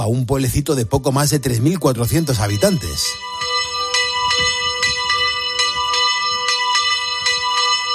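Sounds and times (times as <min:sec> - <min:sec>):
speech: 0:00.0 - 0:03.6
bell of the San Marcos hermitage in Abelda de Iregua ringing: 0:01.8 - 0:07.9.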